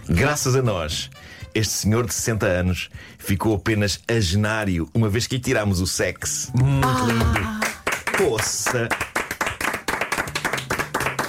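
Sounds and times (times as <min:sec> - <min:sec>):
speech: 0:00.1 - 0:09.1
audience applause: 0:06.8 - 0:11.2.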